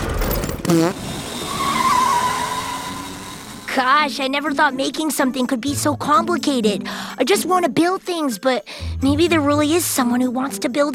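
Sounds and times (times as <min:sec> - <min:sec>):
car revving: 0:00.0 - 0:03.9
tire squeal of car peeling away: 0:00.1 - 0:03.9
speech: 0:00.7 - 0:01.1, 0:03.8 - 0:10.9.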